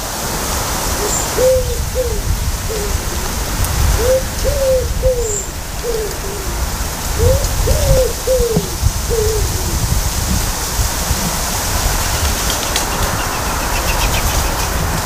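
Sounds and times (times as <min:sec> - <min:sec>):
steady outdoor hiss: 0:00.0 - 0:15.0
wood pigeons cooing in August: 0:00.9 - 0:10.0, 0:12.1 - 0:14.9.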